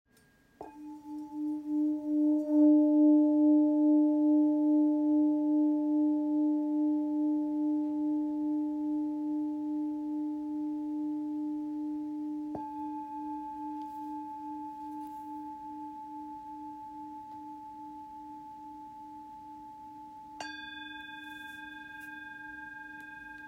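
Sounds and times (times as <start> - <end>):
singing bowl: 0.2 - 23.4.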